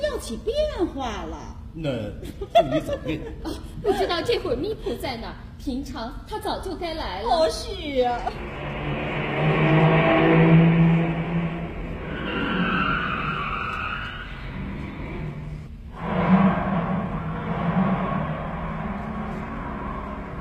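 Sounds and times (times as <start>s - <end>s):
speech: 0.2s - 8.7s
laughter: 2.2s - 4.2s
car driving away: 8.3s - 20.4s.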